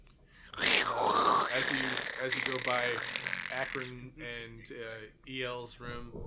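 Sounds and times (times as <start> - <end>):
person voicing a breathy snoring noise: 0.5 - 3.9
speech: 1.6 - 6.2.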